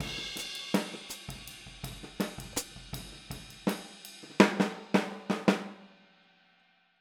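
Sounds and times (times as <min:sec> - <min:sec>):
hi-hat pattern for a boogaloo outro: 0:00.0 - 0:04.4.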